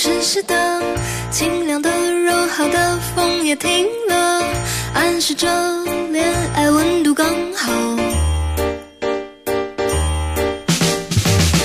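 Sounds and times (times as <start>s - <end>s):
speech: 0.2s - 8.1s
piano notes playing a doorbell ding-dong: 4.4s - 11.6s.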